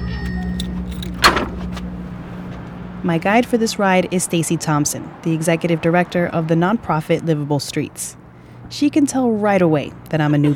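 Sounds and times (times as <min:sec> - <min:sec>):
bike-share bicycle unlocked from dock in Boston: 0:00.0 - 0:02.9
steady low hum of traffic or idling engines: 0:00.0 - 0:10.5
speech: 0:03.0 - 0:10.5.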